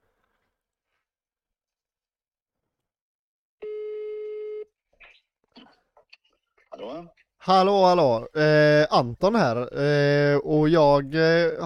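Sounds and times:
telephone ringback tone during outgoing call: 0:03.6 - 0:04.7
speech: 0:06.8 - 0:11.6.

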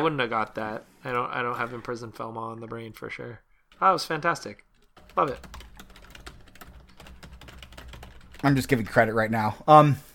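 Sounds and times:
speech: 0:00.0 - 0:05.6, 0:08.4 - 0:10.1
typing on a computer keyboard: 0:04.8 - 0:09.0.

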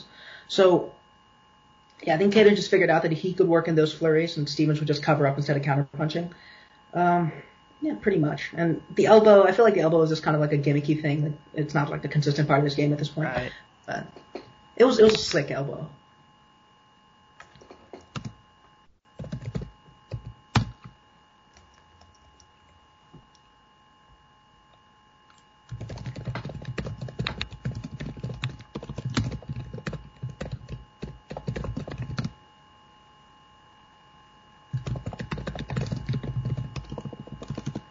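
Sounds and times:
faint steady hum: 0:00.0 - 0:37.8
speech: 0:00.5 - 0:01.0, 0:02.0 - 0:16.0
typing on a computer keyboard: 0:17.4 - 0:18.4, 0:19.2 - 0:20.9, 0:25.7 - 0:32.3, 0:34.7 - 0:37.8.

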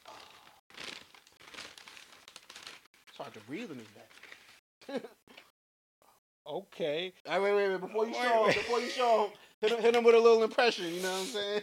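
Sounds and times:
brown paper bag crinkling and rustling as opened: 0:00.0 - 0:04.6
speech: 0:03.2 - 0:05.3, 0:06.5 - 0:11.6.

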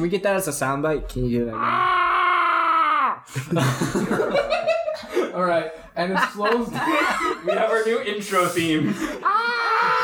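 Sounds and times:
speech: 0:00.0 - 0:02.1, 0:03.3 - 0:04.8, 0:05.4 - 0:09.3
person screaming: 0:01.5 - 0:03.3, 0:09.2 - 0:10.0
laughter: 0:03.3 - 0:10.0.

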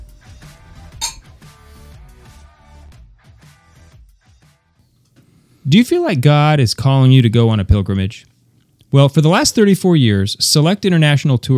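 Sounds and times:
glasses clinking in a toast: 0:01.0 - 0:01.3
speech: 0:05.7 - 0:08.3, 0:08.9 - 0:11.5.

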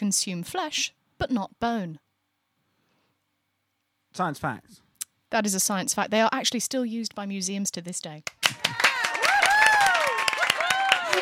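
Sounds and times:
speech: 0:00.0 - 0:02.0, 0:04.2 - 0:08.8
several people clapping: 0:08.2 - 0:11.2
people whooping and cheering: 0:08.5 - 0:11.2.

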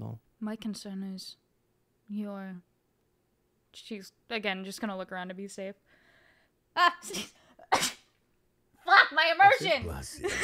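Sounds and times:
speech: 0:00.5 - 0:01.4, 0:02.1 - 0:02.7, 0:03.7 - 0:05.9, 0:06.8 - 0:07.4, 0:09.1 - 0:10.4
person sneezing: 0:07.1 - 0:08.1.

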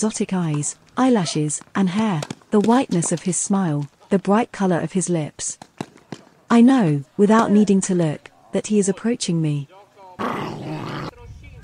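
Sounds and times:
speech: 0:00.0 - 0:05.7, 0:06.5 - 0:09.8
dog growling low: 0:10.2 - 0:11.2.

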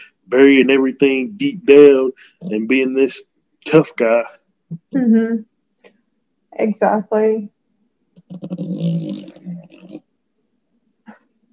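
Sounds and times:
speech: 0:00.3 - 0:05.5, 0:06.5 - 0:07.6, 0:08.3 - 0:09.3
French bulldog snoring on a person's lap: 0:08.2 - 0:10.0.

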